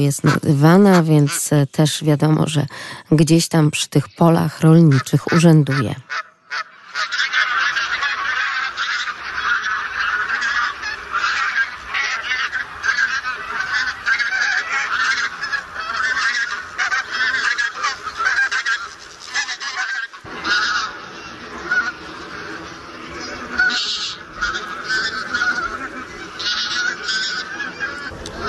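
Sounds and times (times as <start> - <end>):
taiga bean geese and barnacle geese honking, gathering for migration: 0.0 - 2.9, 4.4 - 28.4
speech: 0.0 - 6.3.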